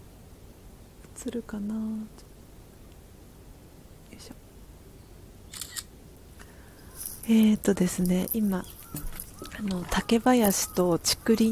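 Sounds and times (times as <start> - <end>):
hiss: 0.0 - 11.4
speech: 1.2 - 2.3, 4.2 - 4.4, 7.3 - 9.0, 9.6 - 11.4
camera shutter clicking as a photo is taken: 5.5 - 5.9.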